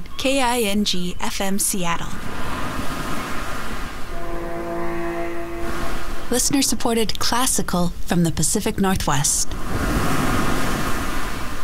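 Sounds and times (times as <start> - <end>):
speech: 0.2 - 2.3, 6.3 - 9.9
continuous wash of water and waves: 2.2 - 8.1, 9.4 - 11.6.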